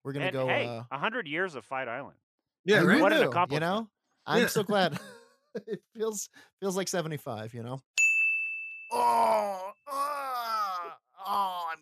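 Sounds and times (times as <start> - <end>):
speech: 0.0 - 8.0, 8.9 - 11.7
person groaning in pain after a hot tub: 8.9 - 11.7.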